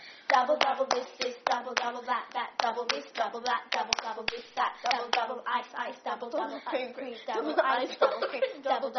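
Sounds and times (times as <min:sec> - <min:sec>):
hand clapping: 0:00.3 - 0:02.0, 0:02.6 - 0:05.3
laughter: 0:06.3 - 0:08.8.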